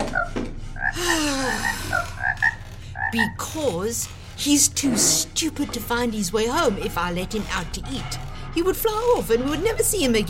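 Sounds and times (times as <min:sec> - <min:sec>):
frog croaking: 0:00.0 - 0:03.4
speech: 0:03.1 - 0:10.2.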